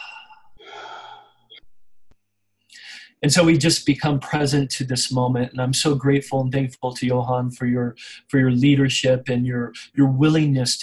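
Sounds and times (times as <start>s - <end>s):
slow deep breath in and long breathy exhale: 0.0s - 1.6s, 2.7s - 3.2s, 8.0s - 8.3s
speech: 3.2s - 10.8s.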